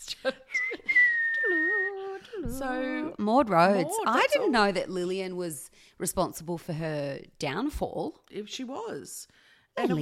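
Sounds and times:
person whistling a short wavering tone: 0.5 - 2.4
speech: 2.6 - 10.0.

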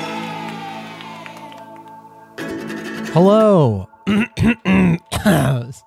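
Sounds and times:
speech: 3.1 - 5.8
person clearing throat: 4.0 - 5.8.

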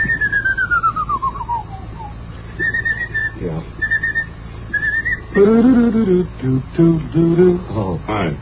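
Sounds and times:
person whistling a march tune: 0.0 - 6.0
speech: 5.4 - 8.3.

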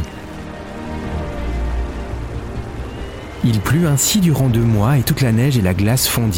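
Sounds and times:
heavy rain falling: 0.0 - 6.3
speech: 3.4 - 6.3.

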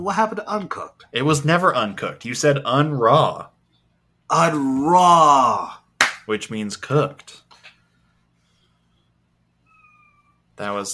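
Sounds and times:
speech: 0.0 - 3.5, 4.3 - 7.4, 10.6 - 10.9
low hum: 0.0 - 10.9
cat meowing: 9.6 - 10.5.

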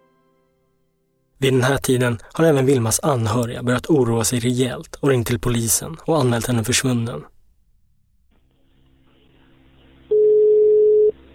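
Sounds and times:
speech: 1.4 - 7.3
electronic telephone ringing tone beep: 10.1 - 11.2.

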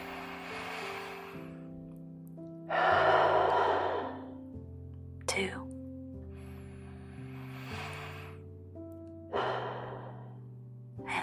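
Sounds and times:
slow deep breath in and out during a guided breathing exercise: 0.0 - 1.8, 2.7 - 4.5, 6.2 - 8.5, 9.3 - 11.2
speech: 5.4 - 5.7.

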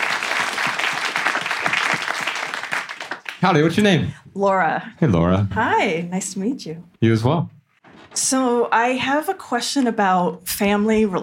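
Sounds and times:
audience applause at a live show: 0.0 - 4.1
speech: 3.4 - 7.6, 8.2 - 11.2.

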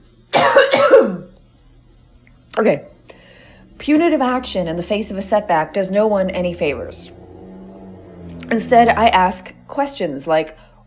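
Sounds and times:
person clearing throat: 0.3 - 1.3
person coughing: 0.3 - 1.3
speech: 0.6 - 1.3, 2.6 - 2.9, 3.8 - 7.2, 8.5 - 10.6.

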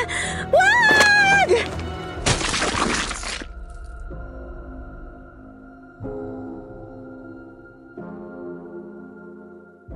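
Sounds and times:
skull hitting the ground after a jump from a balcony into a garden: 0.9 - 3.8.

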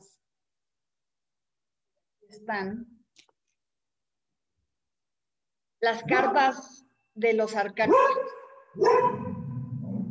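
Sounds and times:
speech: 2.3 - 3.0, 5.8 - 9.2
small dog barking: 7.9 - 9.4.

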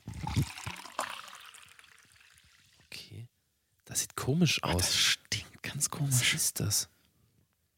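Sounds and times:
liquid pouring from a bottle with gurgling glugs: 0.0 - 2.9
speech: 4.3 - 5.2, 6.0 - 7.0.

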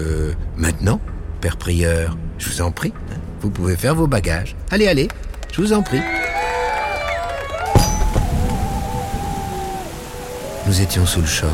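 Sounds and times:
speech: 0.0 - 6.2, 10.7 - 11.5
heavy rain downpour: 7.3 - 11.5
sudden loud thud: 7.8 - 8.9.

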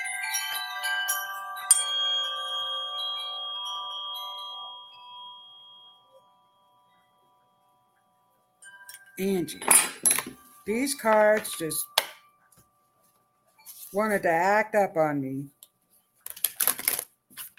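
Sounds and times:
small bell ringing: 0.0 - 12.9
speech: 9.2 - 11.9, 13.9 - 15.6.

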